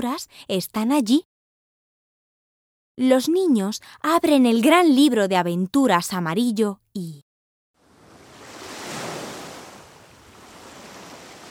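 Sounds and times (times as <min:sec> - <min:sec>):
speech: 0:00.0 - 0:01.3, 0:03.0 - 0:07.2
sea waves washing in: 0:07.8 - 0:11.4.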